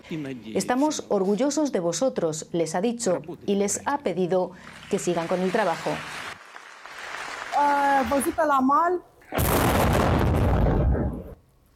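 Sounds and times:
speech: 0:00.1 - 0:06.3, 0:08.0 - 0:09.7
naval drone explosion: 0:09.3 - 0:11.4.

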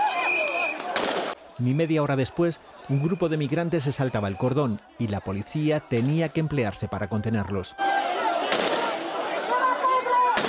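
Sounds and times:
murmur of crowd voices and commotion: 0:00.0 - 0:10.4
gunshots fired into the air: 0:00.8 - 0:01.4, 0:08.5 - 0:09.0
speech: 0:01.6 - 0:08.3.

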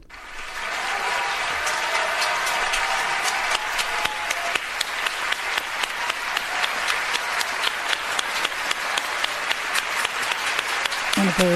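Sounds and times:
large crowd giving a standing ovation for award winners: 0:00.0 - 0:11.5
sharper individual claps: 0:00.0 - 0:11.5
speech: 0:11.3 - 0:11.5.

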